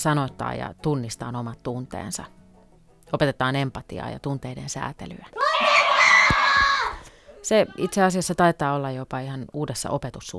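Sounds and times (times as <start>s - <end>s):
speech: 0.0s - 2.4s, 3.1s - 5.8s, 7.4s - 10.3s
children shouting and screaming: 5.4s - 7.9s.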